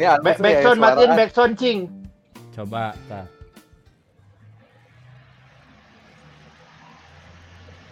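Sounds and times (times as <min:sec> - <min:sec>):
speech: 0:00.0 - 0:02.0, 0:02.6 - 0:03.4
steady hissing rain-like noise from a sleep sound machine: 0:04.6 - 0:07.9.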